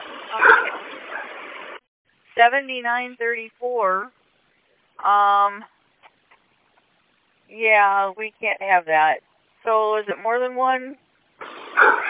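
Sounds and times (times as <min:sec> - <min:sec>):
noisy rumble: 0:00.0 - 0:12.0
service dogs barking on a bus: 0:00.3 - 0:00.8, 0:11.7 - 0:12.0
speech: 0:02.4 - 0:04.2, 0:05.0 - 0:05.7, 0:07.5 - 0:11.0.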